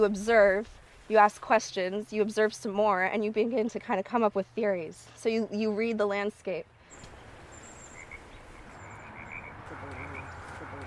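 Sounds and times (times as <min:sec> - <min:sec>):
speech: 0:00.0 - 0:07.1
higher chirps of Pacific chorus frogs: 0:06.9 - 0:10.8
chorus of Pacific chorus frogs croaking: 0:07.4 - 0:10.8.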